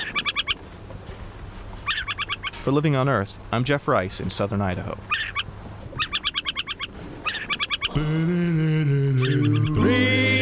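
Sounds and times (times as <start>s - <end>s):
adult owl on a fence post giving rasping chattering call: 0.0s - 0.6s, 1.8s - 2.6s, 5.0s - 8.0s, 9.2s - 9.8s
speech: 2.6s - 5.2s, 8.0s - 10.0s.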